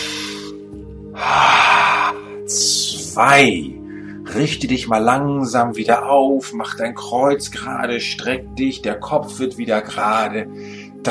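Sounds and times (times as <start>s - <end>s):
deep inhale during a guided relaxation exercise: 0.0s - 2.5s, 3.8s - 4.3s, 10.5s - 11.0s
faint breath: 1.2s - 2.5s, 3.8s - 4.3s, 10.6s - 11.0s
speech: 3.2s - 11.0s.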